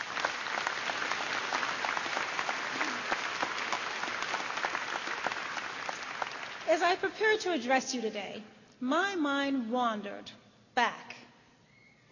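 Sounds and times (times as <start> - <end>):
audience applause for graduates' families: 0.0 - 6.9
speech: 6.7 - 11.0.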